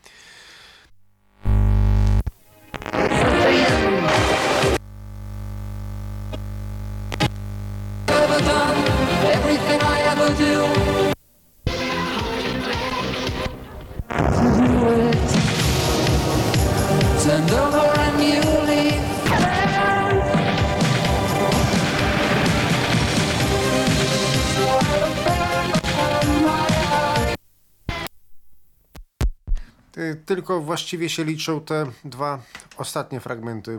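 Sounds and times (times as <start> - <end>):
dense music played back from a cassette on a tape recorder: 1.2 - 28.3
low thumping hum: 4.8 - 8.1
speech: 30.4 - 33.7.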